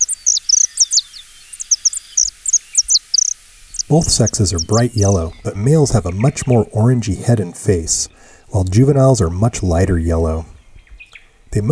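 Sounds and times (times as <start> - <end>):
saffron finch singing: 0.0 - 6.7
speech: 3.9 - 10.5, 11.5 - 11.7.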